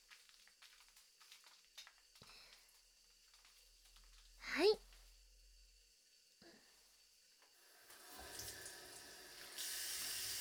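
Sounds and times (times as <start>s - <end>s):
speech: 4.6s - 4.8s
water running from a faucet into a sink while rinsing hands: 7.6s - 10.3s.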